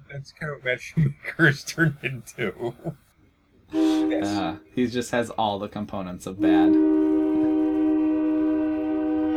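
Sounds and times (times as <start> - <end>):
speech: 0.1 - 3.0, 4.1 - 6.8
loud train horn blaring outside house: 3.7 - 4.6, 6.4 - 9.3.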